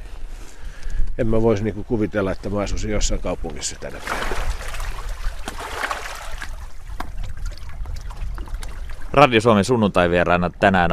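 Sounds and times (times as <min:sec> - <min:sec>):
speech: 0:01.2 - 0:04.6, 0:09.2 - 0:10.9
sea water lapping at the seashore beside a terrace: 0:01.7 - 0:09.7
small splashes and drips of sea water: 0:03.8 - 0:09.3.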